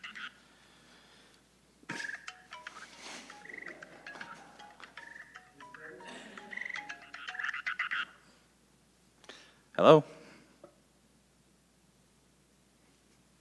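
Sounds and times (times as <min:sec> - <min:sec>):
mobile phone ringtone with repeating electronic melody: 0:01.9 - 0:08.2
speech: 0:09.8 - 0:10.2.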